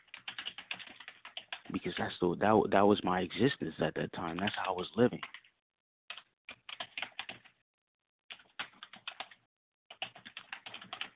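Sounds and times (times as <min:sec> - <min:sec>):
clattering keystrokes on a computer keyboard: 0:00.0 - 0:02.1, 0:04.3 - 0:05.5, 0:06.1 - 0:07.6, 0:08.3 - 0:11.1
speech: 0:01.7 - 0:05.4.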